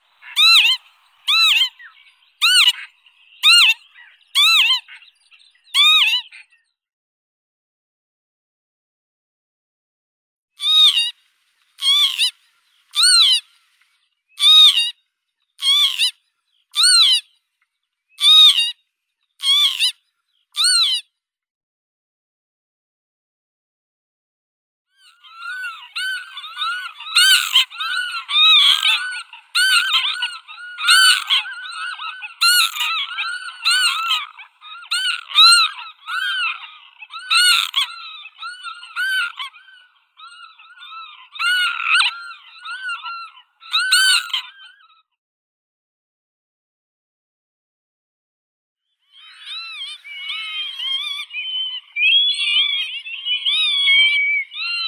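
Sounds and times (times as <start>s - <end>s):
northern lapwing Vanellus vanellus calling: 0.0s - 6.4s, 10.6s - 11.2s, 11.8s - 13.8s, 14.4s - 14.9s, 15.6s - 16.2s, 16.8s - 17.3s, 18.2s - 18.8s, 19.4s - 20.0s, 20.6s - 21.0s, 25.0s - 44.9s, 49.1s - 54.8s.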